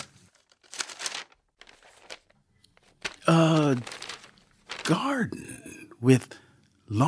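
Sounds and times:
paper rustling and being crumpled: 0:00.0 - 0:05.2
speech: 0:03.3 - 0:04.0, 0:04.9 - 0:07.0.

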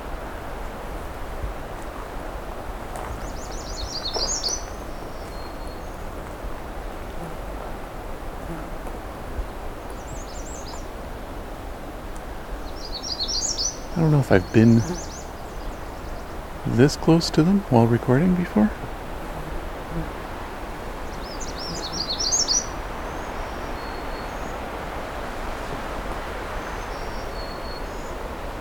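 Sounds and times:
magnolia warbler singing: 0:03.0 - 0:06.2, 0:09.9 - 0:11.0, 0:12.4 - 0:20.0, 0:21.0 - 0:24.6, 0:26.6 - 0:28.3
speech: 0:14.0 - 0:15.1, 0:16.7 - 0:18.9, 0:20.0 - 0:20.2.

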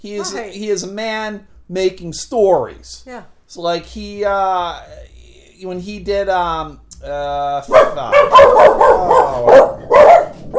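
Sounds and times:
speech: 0:00.0 - 0:09.8
dogs barking: 0:00.1 - 0:00.5, 0:07.7 - 0:10.5.

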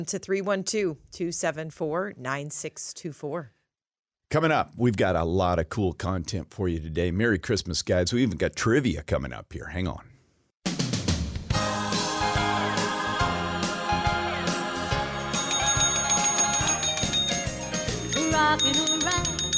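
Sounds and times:
speech: 0:00.0 - 0:03.6, 0:04.3 - 0:10.1
rhythmic music-like backing: 0:10.7 - 0:19.5
hand bells ringing: 0:15.1 - 0:19.5.

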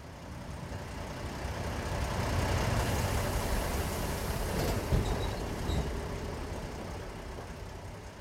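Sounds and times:
bus engine rumble heard from inside: 0:00.0 - 0:08.1
bus road noise heard from inside: 0:00.0 - 0:08.1.

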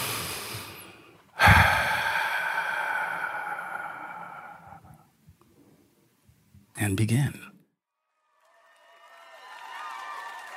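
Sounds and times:
deep breath: 0:00.0 - 0:05.9
speech: 0:06.8 - 0:07.5.

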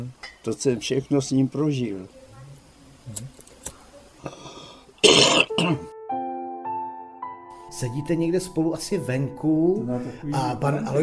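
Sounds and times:
speech: 0:00.0 - 0:02.2, 0:03.1 - 0:03.4, 0:05.6 - 0:05.9, 0:07.8 - 0:11.0
heavy rasping smoker's cough: 0:05.0 - 0:05.9.

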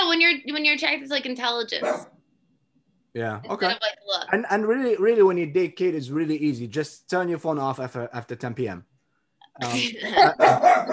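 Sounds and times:
speech: 0:00.1 - 0:02.2, 0:03.1 - 0:08.9, 0:09.6 - 0:10.9
dog barking: 0:01.8 - 0:02.2, 0:10.2 - 0:10.9
laughter: 0:09.6 - 0:10.6.

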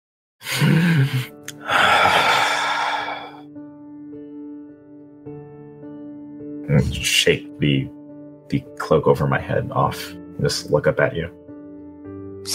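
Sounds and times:
person drawing deep uneven inhaling breaths: 0:00.5 - 0:03.4
speech: 0:00.6 - 0:01.9, 0:06.7 - 0:11.4.

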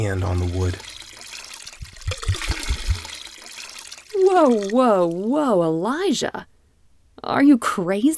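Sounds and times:
speech: 0:00.0 - 0:01.0, 0:04.2 - 0:06.5, 0:07.2 - 0:08.1
water being poured: 0:00.0 - 0:05.4.

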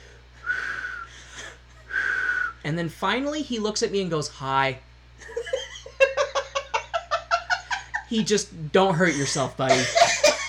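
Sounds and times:
person whistling a single held note: 0:00.4 - 0:01.1, 0:01.9 - 0:02.6
speech: 0:02.6 - 0:05.5, 0:08.1 - 0:10.2
laughter: 0:05.2 - 0:08.1, 0:09.0 - 0:10.4.

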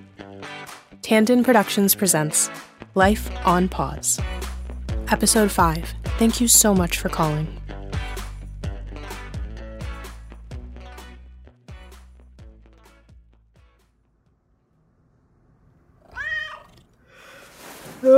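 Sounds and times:
speech: 0:00.2 - 0:08.0
cat meowing: 0:16.0 - 0:17.0.

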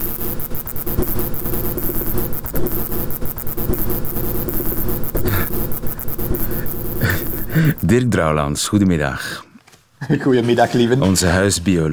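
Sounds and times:
greater mouse-eared bat buzzing like a hornet: 0:00.0 - 0:07.9
rapid crackling clicks of a greater mouse-eared bat: 0:00.0 - 0:07.9
speech: 0:07.9 - 0:09.5, 0:10.1 - 0:11.9.

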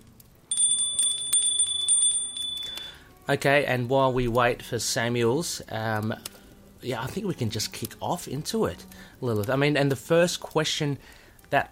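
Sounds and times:
bell rung with rapid repeated strikes: 0:00.5 - 0:03.0
speech: 0:03.3 - 0:11.7.

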